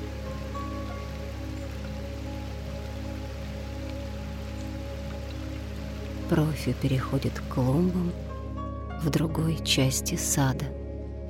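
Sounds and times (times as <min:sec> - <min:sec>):
garden hose water spraying and pattering onto grass: 0:00.0 - 0:08.3
low constant rumble: 0:00.0 - 0:11.2
speech: 0:06.3 - 0:08.3, 0:09.0 - 0:10.8.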